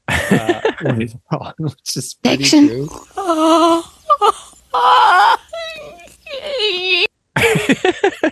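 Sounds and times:
laughter: 0.1 - 2.6, 4.1 - 8.2
speech: 0.4 - 3.9
woman crying wail, guttural and braying like a donkey: 2.4 - 7.1
gasping sobs: 2.8 - 7.8.

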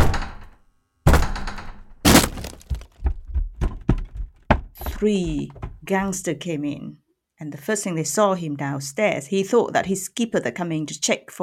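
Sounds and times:
door splintering and crashing: 1.1 - 4.7
smaller knocks and clatters: 1.6 - 5.9
heavy forceful thuds against a front door being kicked in: 2.1 - 5.9
speech: 5.0 - 11.4.

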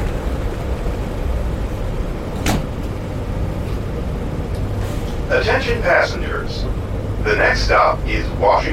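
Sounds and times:
moving passenger train rumbling: 0.0 - 8.7
train doors thudding shut: 1.6 - 3.9
speech: 5.4 - 8.7.

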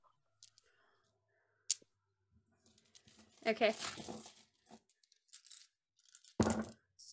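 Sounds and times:
speech: 3.5 - 4.4
handful of dice rolling across a hard tabletop: 6.1 - 6.8.

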